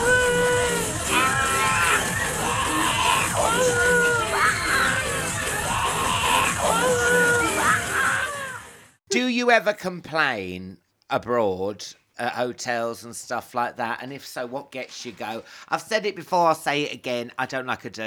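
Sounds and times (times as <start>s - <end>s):
crowd of people screaming and whooping: 0.0s - 9.0s
speech: 9.5s - 18.0s.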